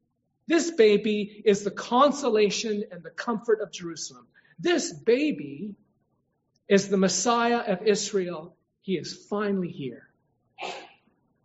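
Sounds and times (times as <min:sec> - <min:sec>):
speech: 0:00.5 - 0:05.8, 0:06.7 - 0:10.0, 0:10.6 - 0:10.9
sneeze: 0:10.6 - 0:11.1.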